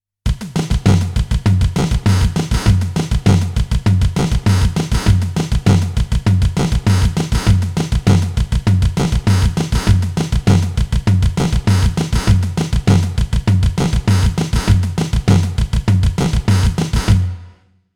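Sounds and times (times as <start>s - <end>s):
electronic drum machine effects test: 0.3s - 17.4s.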